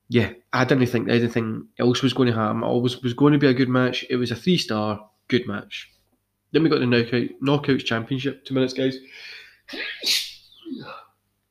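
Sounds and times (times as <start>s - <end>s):
speech: 0.1s - 11.0s
gasping breath: 9.1s - 9.7s
person sneezing: 9.7s - 11.1s.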